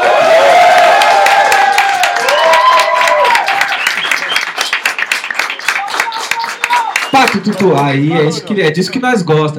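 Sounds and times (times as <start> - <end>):
live crowd cheering and whooping: 0.0 - 5.0, 5.7 - 7.8
live crowd applause: 0.0 - 8.2
speech: 7.3 - 9.5.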